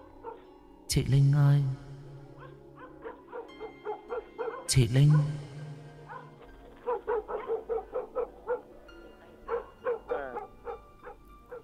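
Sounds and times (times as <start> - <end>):
yellow dog growling and barking: 0.0 - 0.4, 2.4 - 5.4, 6.0 - 11.6
yellow dog giving short high yips: 0.2 - 0.4, 2.4 - 4.7, 6.1 - 8.7, 9.4 - 11.6
speech: 0.9 - 1.8, 4.7 - 5.5.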